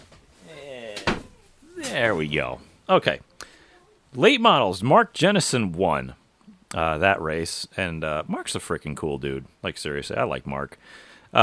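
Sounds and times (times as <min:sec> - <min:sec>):
door thumping shut: 0:01.0 - 0:01.4
speech: 0:01.9 - 0:03.3, 0:04.1 - 0:11.4.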